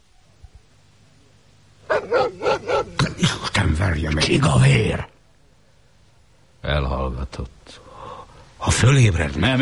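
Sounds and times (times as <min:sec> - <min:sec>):
dog barking at a farmstead: 0:01.9 - 0:03.1
speech: 0:04.1 - 0:05.1, 0:06.7 - 0:07.8, 0:08.7 - 0:09.5.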